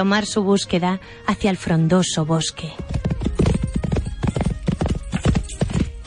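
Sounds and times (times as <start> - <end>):
speech: 0.0 - 3.0
hoofbeats of a galloping white horse being ridden: 2.6 - 6.0.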